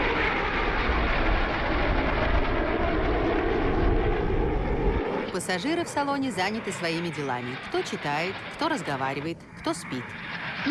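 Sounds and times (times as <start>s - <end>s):
steady loud engine drone: 0.0s - 10.6s
speech: 5.4s - 10.6s.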